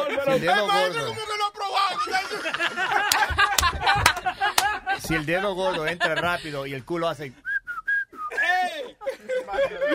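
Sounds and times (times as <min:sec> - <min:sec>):
laughter: 0:00.0 - 0:01.1, 0:01.8 - 0:06.8, 0:08.3 - 0:09.9
speech: 0:00.2 - 0:01.3, 0:02.0 - 0:04.0, 0:05.0 - 0:07.4
short steady whistled notes imitating a sound: 0:07.4 - 0:08.4.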